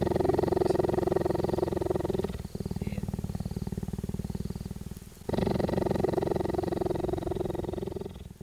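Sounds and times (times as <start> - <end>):
cheetah purring while being petted: 0.0 - 8.4.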